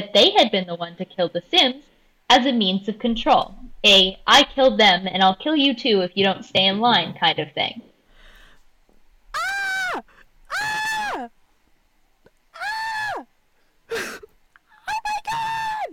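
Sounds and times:
speech: 0:00.0 - 0:07.9, 0:10.0 - 0:11.4
person screaming with strained screams: 0:09.3 - 0:11.3, 0:12.6 - 0:13.3, 0:14.8 - 0:15.9.

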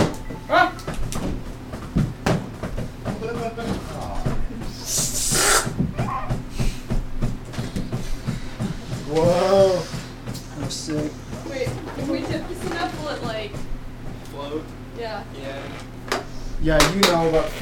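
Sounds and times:
low hums: 0:00.0 - 0:17.6
breathy puffs blowing up a balloon: 0:04.6 - 0:11.4
balloon being blown up: 0:04.9 - 0:05.8.

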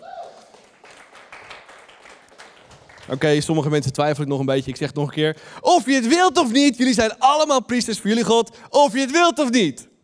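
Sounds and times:
crowd applauding: 0:00.0 - 0:03.5
speech: 0:03.1 - 0:09.9.

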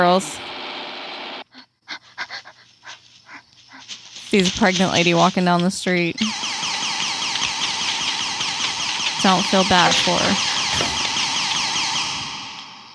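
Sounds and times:
speech: 0:00.0 - 0:00.6, 0:04.3 - 0:06.5, 0:09.2 - 0:11.0
shrill sci-fi smoke-alarm electronic alarm warbling: 0:06.2 - 0:12.9.

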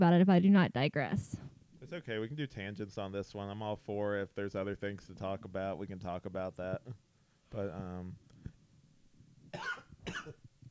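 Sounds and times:
speech: 0:00.0 - 0:08.2
person coughing harshly: 0:09.6 - 0:10.4.

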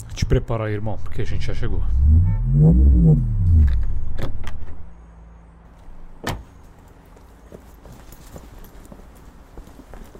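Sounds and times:
speech: 0:00.3 - 0:04.4
car engine humming low: 0:01.7 - 0:07.2.

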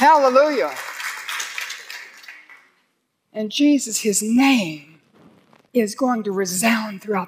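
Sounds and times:
speech: 0:00.0 - 0:00.9, 0:03.4 - 0:04.9, 0:05.7 - 0:07.2
crowd applause: 0:00.0 - 0:02.8.

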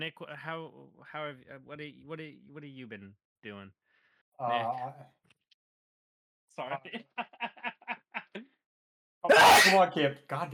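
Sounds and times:
speech: 0:00.0 - 0:05.2, 0:06.6 - 0:07.7, 0:09.2 - 0:10.5
loud sneeze: 0:09.3 - 0:09.8.

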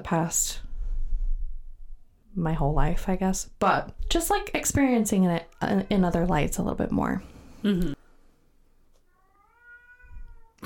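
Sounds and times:
speech: 0:00.0 - 0:00.6, 0:02.4 - 0:08.0
female cat meowing loudly: 0:09.1 - 0:10.6.

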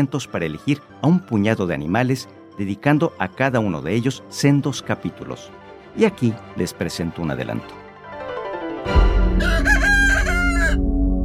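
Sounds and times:
speech: 0:00.0 - 0:07.8
rooster crowing: 0:09.0 - 0:10.9.

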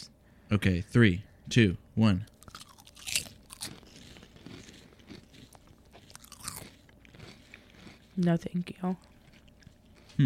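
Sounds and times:
speech: 0:00.5 - 0:02.3, 0:08.2 - 0:09.1
biting and crunching Cheeto-flavored Lay's potato chips: 0:02.3 - 0:10.2
chewing potato chips: 0:02.3 - 0:10.2.

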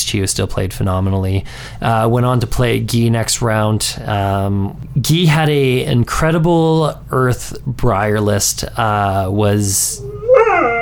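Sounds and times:
speech: 0:00.1 - 0:10.8
dog howling: 0:09.9 - 0:10.8.

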